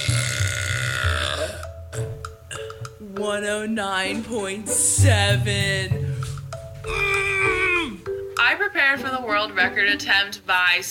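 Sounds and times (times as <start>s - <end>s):
woman burping loudly: 0.0s - 2.9s, 5.4s - 8.2s
speech: 3.2s - 6.0s, 8.4s - 10.8s.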